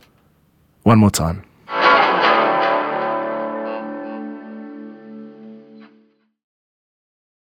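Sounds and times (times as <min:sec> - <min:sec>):
speech: 0:00.9 - 0:01.5
distorted guitar note: 0:01.7 - 0:06.2.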